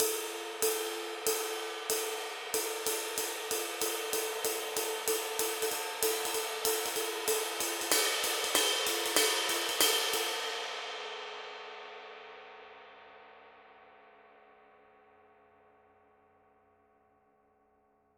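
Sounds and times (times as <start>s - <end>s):
dark crash ride cymbal: 0.0s - 12.3s.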